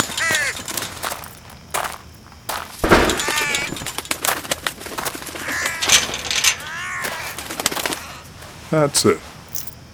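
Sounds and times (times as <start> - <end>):
crow calling: 0.0 - 1.2, 2.9 - 8.5
speech: 8.7 - 9.3.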